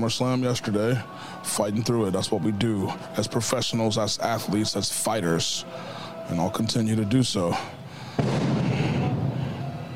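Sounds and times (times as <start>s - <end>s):
speech: 0.0s - 8.5s
pyrotechnics blast at a wrestling show: 8.2s - 9.4s.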